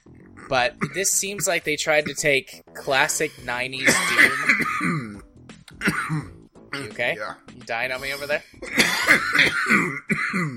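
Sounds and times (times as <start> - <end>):
speech: 0.5 - 5.0, 7.0 - 10.5
person coughing after choking on spit: 0.8 - 1.0, 3.8 - 5.2, 5.8 - 6.9, 8.0 - 10.5.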